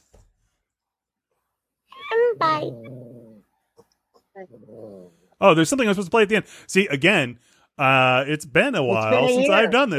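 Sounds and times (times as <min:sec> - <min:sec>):
dog growling and whimpering: 0:02.0 - 0:03.6, 0:04.4 - 0:05.3
speech: 0:02.4 - 0:03.0, 0:04.4 - 0:09.9.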